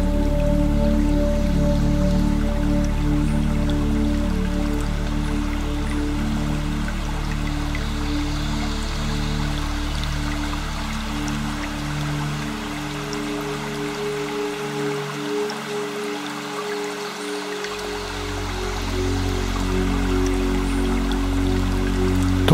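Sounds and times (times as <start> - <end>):
small stream flowing and trickling: 0.0 - 22.5.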